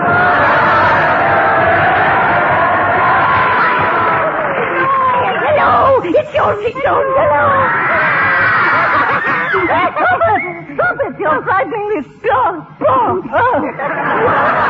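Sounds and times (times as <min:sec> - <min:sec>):
dense crowd screaming and wailing in horror: 0:00.0 - 0:10.1
laughter: 0:03.7 - 0:11.4, 0:13.0 - 0:14.6.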